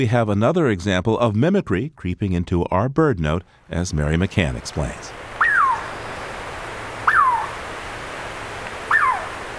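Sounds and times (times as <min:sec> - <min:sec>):
speech: 0:00.0 - 0:05.2
Douglas squirrel calling with a downward-sliding whistle: 0:05.4 - 0:06.2, 0:07.0 - 0:07.6, 0:08.8 - 0:09.5.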